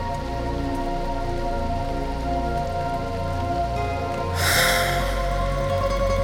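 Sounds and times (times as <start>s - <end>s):
steady rain pattering on a surface: 0.0s - 6.2s.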